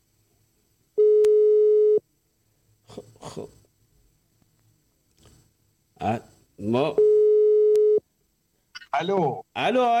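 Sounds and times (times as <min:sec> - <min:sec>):
telephone tone while calling back after a dropped call: 0:01.0 - 0:02.0, 0:07.0 - 0:08.0
speech: 0:06.0 - 0:07.1, 0:09.0 - 0:09.9.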